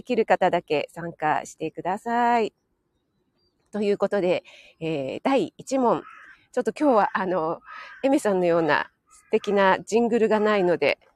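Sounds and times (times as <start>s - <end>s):
speech: 0.0s - 2.6s, 3.7s - 11.1s
crows cawing outdoors: 5.9s - 10.8s.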